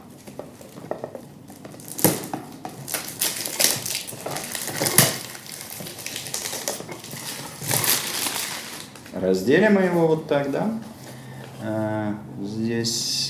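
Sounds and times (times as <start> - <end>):
sealed perfume packaging of plastic and cardboard crinkling and tearing: 0.7 - 9.2
speech: 9.2 - 10.9, 11.6 - 13.2.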